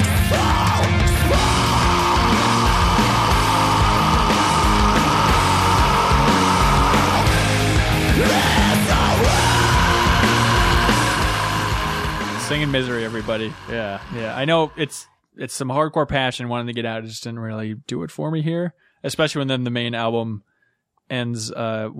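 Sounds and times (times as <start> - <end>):
loud rock band playing: 0.0 - 14.8
raw screamed vocal holding a long strained note: 0.0 - 14.9
speech: 12.6 - 20.5, 21.1 - 21.9.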